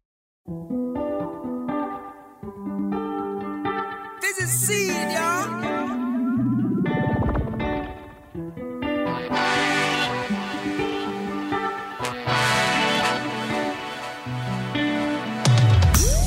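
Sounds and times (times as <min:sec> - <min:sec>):
band song with layered synths and guitars over a steady beat: 0:00.5 - 0:16.2
brief sung vocal line: 0:04.2 - 0:07.4
swooping electronic sweeps: 0:05.9 - 0:08.4.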